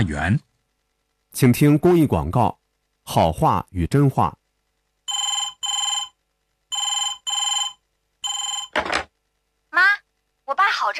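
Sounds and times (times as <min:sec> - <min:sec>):
speech: 0:00.0 - 0:00.5, 0:01.3 - 0:04.4
telephone ringing in a double-ring pattern: 0:05.1 - 0:09.0.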